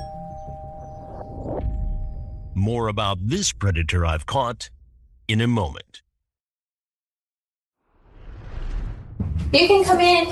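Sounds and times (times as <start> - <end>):
house doorbell ding-dong chime: 0.0 - 2.3
speech: 2.6 - 6.0, 9.5 - 10.3.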